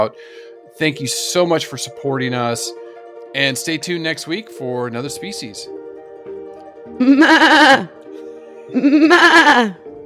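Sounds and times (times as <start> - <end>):
speech: 0.0 - 5.8, 6.9 - 8.0, 8.7 - 9.8
person imitating a mother goat bleating: 7.0 - 7.9, 8.8 - 9.8.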